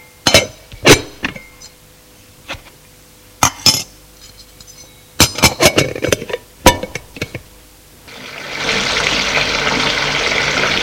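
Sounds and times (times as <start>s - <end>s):
glass and dishes clinking and knocking: 0.2s - 1.8s, 3.4s - 7.4s
water running to fill a bath: 8.1s - 10.8s.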